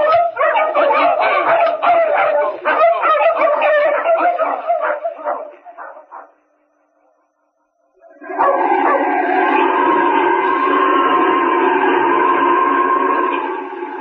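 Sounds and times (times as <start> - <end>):
dogs howling and whining: 0.0 - 6.3, 8.0 - 13.9
dogs barking and yipping: 0.0 - 6.4, 8.3 - 9.1.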